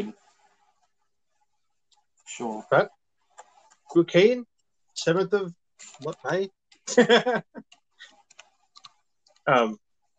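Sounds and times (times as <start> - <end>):
speech: 0.0 - 0.2, 2.3 - 3.0, 3.9 - 7.7, 9.5 - 9.8
laughter: 6.9 - 7.6
soft typing on a computer keyboard: 7.6 - 9.5.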